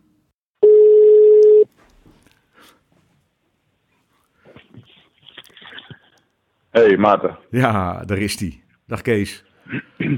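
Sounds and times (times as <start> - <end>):
outgoing telephone call ringing tone: 0.6 - 1.7
speech: 6.8 - 10.1.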